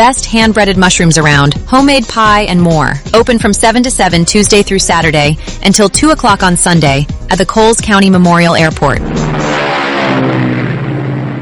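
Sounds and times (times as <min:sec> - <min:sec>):
speech: 0:00.0 - 0:09.3
racing car engine revving at a dirt track speedway: 0:09.0 - 0:11.4.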